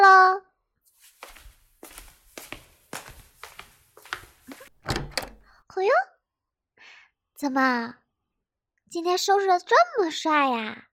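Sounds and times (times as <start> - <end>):
footsteps: 0.9 - 5.2
door being opened: 4.0 - 5.6
speech: 7.4 - 8.0, 8.9 - 10.9.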